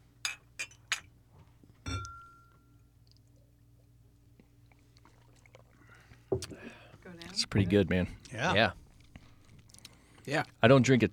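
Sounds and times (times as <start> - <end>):
low hum: 0.0 - 11.1
glasses of bourbon clinking in a toast: 0.2 - 1.1, 1.8 - 2.7
speech: 7.4 - 8.8, 10.3 - 11.1.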